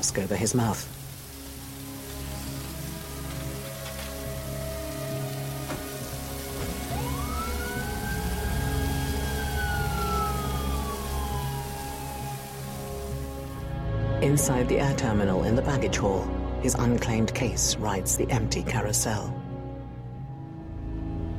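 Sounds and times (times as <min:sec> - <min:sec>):
speech: 0:00.0 - 0:01.0, 0:14.2 - 0:19.4
heavy rain pattering on airport tarmac: 0:00.0 - 0:13.6
ambulance siren wailing at an airport: 0:03.9 - 0:13.6.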